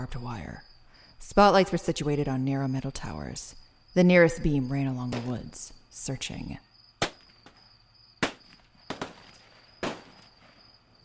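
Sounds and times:
speech: 0.0 - 6.7
gunshots fired from a military watchtower at a wood line: 8.2 - 10.2.

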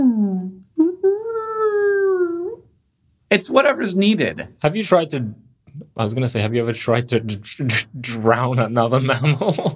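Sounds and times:
voice imitating a high-pitched whale call: 0.0 - 2.7
speech: 3.3 - 5.4, 6.0 - 9.7
laughter: 9.0 - 9.7.

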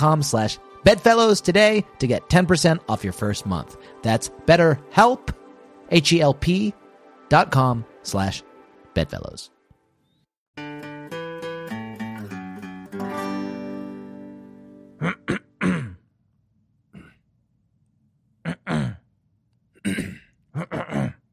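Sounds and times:
speech: 0.0 - 9.6
person clearing throat: 15.0 - 16.1, 17.0 - 17.2, 18.4 - 19.1, 19.8 - 21.3.

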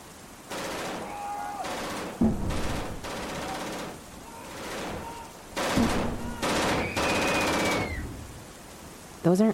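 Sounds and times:
gunfire from people shooting: 0.5 - 8.0.

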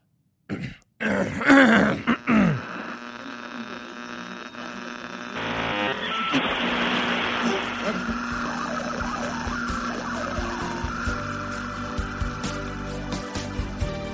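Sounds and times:
throat clearing: 0.5 - 2.6
steady droning noise: 2.1 - 14.0.

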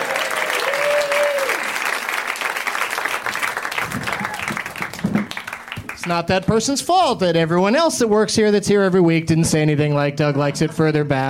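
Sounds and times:
whistle or cheer: 0.0 - 1.7, 3.9 - 4.7
crowd applauding: 0.0 - 6.3
speech: 6.1 - 11.2.

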